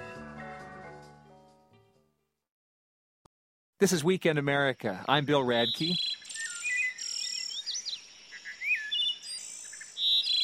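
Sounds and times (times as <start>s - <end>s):
speech: 3.8s - 6.1s
faint birdsong: 3.8s - 10.4s
wood thrush singing flute-like phrases: 3.8s - 10.4s.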